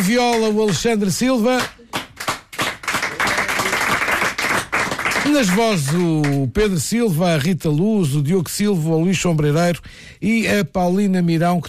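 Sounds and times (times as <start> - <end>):
speech: 0.1 - 1.8, 5.3 - 11.6
audience applause for a Portuguese guitar player: 1.9 - 6.4.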